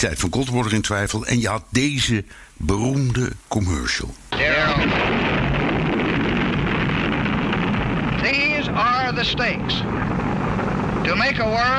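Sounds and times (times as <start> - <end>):
speech: 0.0 - 5.2, 8.2 - 10.4, 11.1 - 11.7
deep rumbling under a nuclear explosion: 4.3 - 11.7
nuclear explosion in a TV commercial: 4.3 - 11.7.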